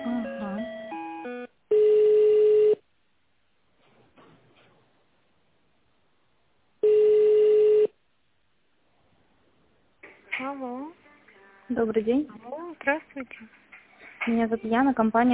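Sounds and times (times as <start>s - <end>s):
telephone dialing tones: 0.2s - 2.8s, 6.8s - 7.9s
speech: 11.8s - 13.6s, 14.3s - 15.3s.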